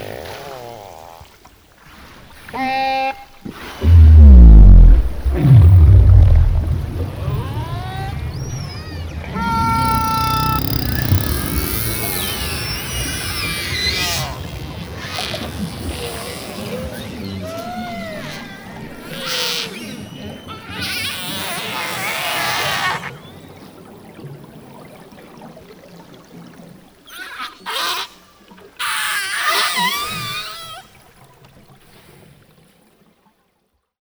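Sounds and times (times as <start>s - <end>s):
constant underwater hiss: 0.0s - 31.1s
orca whistles and pulsed creaking calls underwater: 2.4s - 23.9s, 27.1s - 31.0s
speech: 2.5s - 2.9s.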